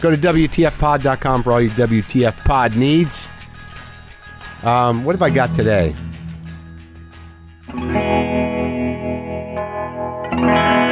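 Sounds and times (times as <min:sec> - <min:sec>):
speech: 0:00.0 - 0:03.4, 0:04.6 - 0:06.1
electric guitar chords through tremolo and echo pedals with gritty tone: 0:05.0 - 0:10.8.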